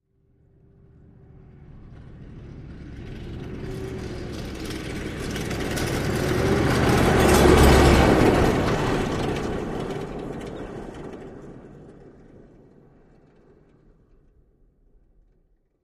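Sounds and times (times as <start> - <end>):
Humvee passing fast: 0.2 - 14.0
Humvee rattle: 1.7 - 12.4.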